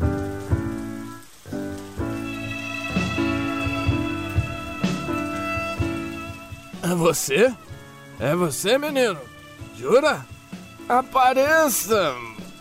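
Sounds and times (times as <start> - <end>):
steady rain pattering: 0.0 - 12.5
sustained musical chords: 2.0 - 11.2
speech: 6.9 - 7.6, 8.2 - 10.3, 10.9 - 12.3.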